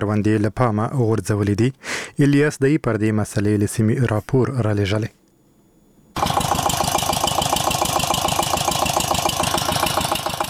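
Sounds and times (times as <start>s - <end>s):
speech: 0.1s - 5.2s
engine-driven water pump drawing water from deep wells to irrigate melon fields: 6.2s - 10.4s.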